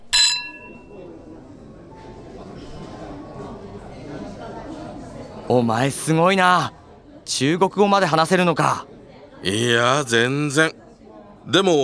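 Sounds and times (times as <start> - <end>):
glasses clinking together in a toast: 0.0 - 1.1
murmur of voices talking: 0.0 - 11.8
speech: 5.5 - 10.8, 11.4 - 11.8.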